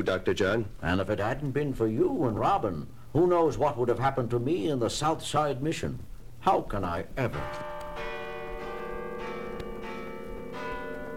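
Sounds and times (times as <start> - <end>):
speech: 0.0 - 7.7
church bells pealing at midnight: 7.3 - 11.1.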